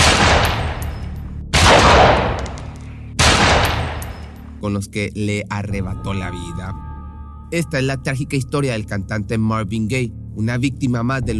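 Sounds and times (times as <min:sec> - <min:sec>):
gunshots with long decay: 0:00.0 - 0:04.3
speech: 0:04.6 - 0:06.9, 0:07.5 - 0:11.3.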